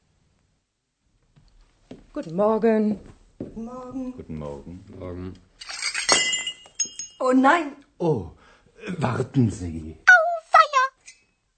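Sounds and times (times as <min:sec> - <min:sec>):
speech: 0:02.1 - 0:05.8, 0:07.2 - 0:10.0
dishes falling to floor and breaking: 0:05.6 - 0:07.2.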